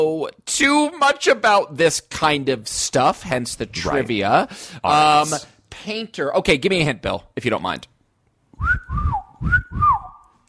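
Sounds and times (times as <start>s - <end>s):
speech: 0.0s - 7.9s
person whistling a two-note swooping phrase: 8.6s - 10.3s.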